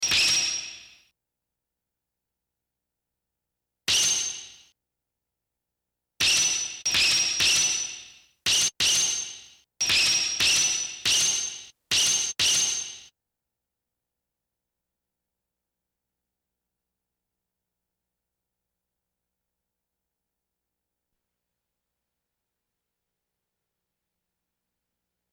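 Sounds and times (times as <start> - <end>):
Japanese sword: 0.0 - 1.0, 3.9 - 4.7, 6.2 - 13.1.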